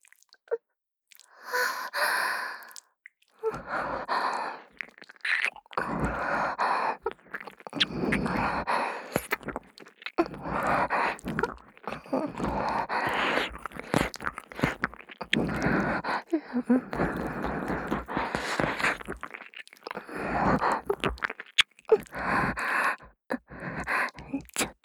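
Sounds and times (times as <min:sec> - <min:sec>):
wet licking and mouth sounds at the ear: 0:02.5 - 0:24.8.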